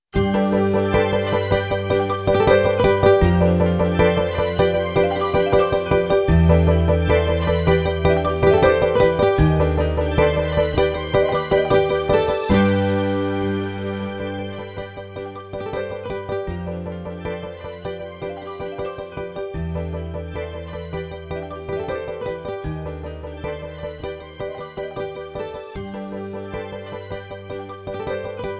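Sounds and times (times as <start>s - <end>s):
happy music: 0.1s - 28.5s.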